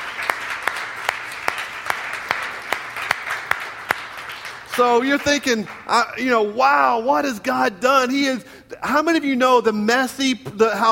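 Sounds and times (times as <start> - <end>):
applause: 0.0 - 7.1
church congregation clapping hands: 0.0 - 7.4
speech: 4.8 - 10.9.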